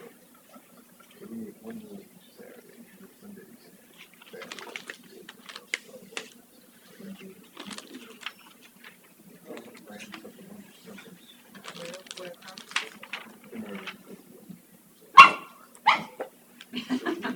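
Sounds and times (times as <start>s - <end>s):
people talking: 1.1s - 15.2s, 16.7s - 17.3s
dog barking: 15.2s - 16.3s
laughter: 16.7s - 17.3s.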